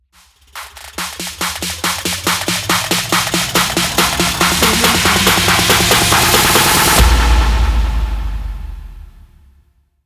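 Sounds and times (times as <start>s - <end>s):
drums: 0.1s - 9.6s
uplifting riser: 0.2s - 7.2s.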